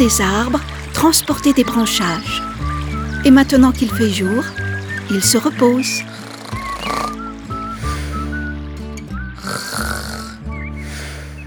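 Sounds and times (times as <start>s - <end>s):
speech: 0.0s - 2.6s, 3.2s - 6.2s
snoring: 5.8s - 8.4s, 9.4s - 11.4s.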